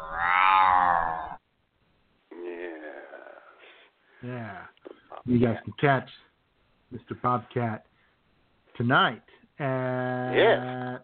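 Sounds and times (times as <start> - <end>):
cat meowing: 0.0 - 1.4
speech: 5.3 - 6.3, 6.9 - 7.9, 8.8 - 11.0.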